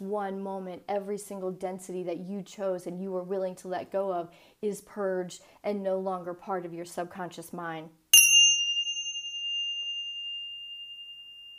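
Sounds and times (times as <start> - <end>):
speech: 0.0 - 8.0
meditation chime ringing: 8.2 - 11.5.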